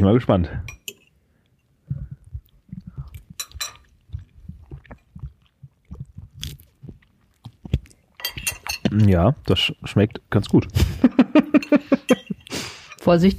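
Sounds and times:
speech: 0.0 - 0.8, 9.0 - 12.2, 13.1 - 13.3
biting and chewing a homemade tofu dish: 1.9 - 10.7
laughter: 10.8 - 12.3.

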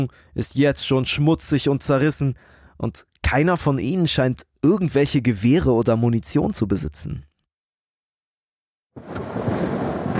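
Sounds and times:
speech: 0.0 - 7.3, 9.0 - 9.2
storm wind and rain roaring over an island shore: 9.0 - 10.1.

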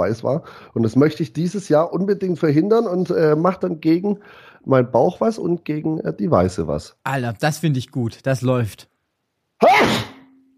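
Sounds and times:
speech: 0.0 - 8.9, 9.6 - 10.1
sneeze into microphone: 9.6 - 10.4.

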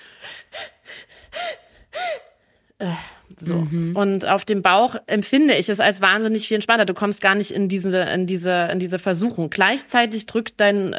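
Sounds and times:
voice imitating short tense panting: 0.0 - 3.2
speech: 2.8 - 10.9.

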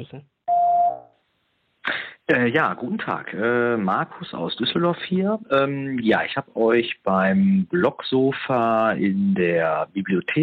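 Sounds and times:
speech: 0.0 - 0.4, 2.3 - 10.4
answering machine beep tone: 0.5 - 1.1.

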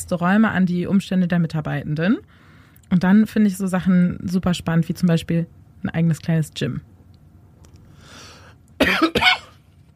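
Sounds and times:
speech: 0.1 - 6.9
two quick harsh coughs: 8.8 - 9.6.

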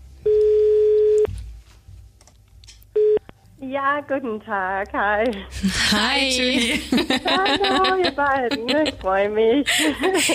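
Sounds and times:
faint low hum: 0.0 - 10.3
telephone beeps as a call is placed: 0.3 - 1.3, 3.0 - 3.2
speech: 3.7 - 10.3
laughter: 5.5 - 10.3.

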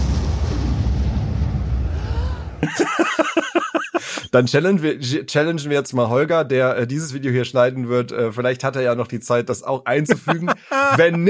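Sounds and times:
loud rumbling explosion: 0.0 - 2.7
laughter: 2.6 - 4.3, 10.0 - 11.2
speech: 2.6 - 11.2.

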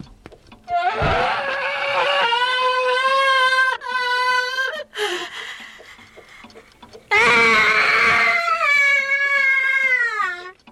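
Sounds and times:
grandfather clock emitting an eerie scream: 0.7 - 4.9, 7.1 - 10.6.

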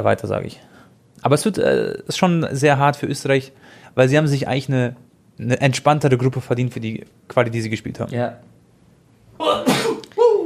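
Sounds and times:
speech: 0.0 - 8.5, 9.4 - 9.8
person sneezing: 9.4 - 10.4.

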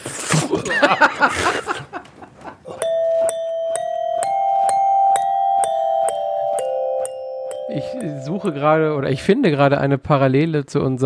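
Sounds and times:
laughter: 0.3 - 2.8
ping-pong ball spat by mouth onto a glockenspiel playing a melody: 2.8 - 9.6
speech: 8.4 - 11.0.

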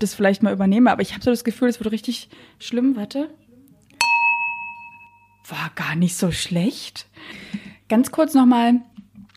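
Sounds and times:
speech: 0.0 - 3.4, 5.5 - 9.0
wine glasses clinking for a toast: 4.0 - 5.4.

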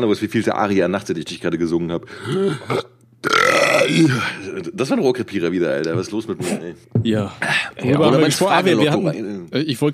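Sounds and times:
speech: 0.0 - 9.9
loud drawn-out burp: 2.3 - 4.4.

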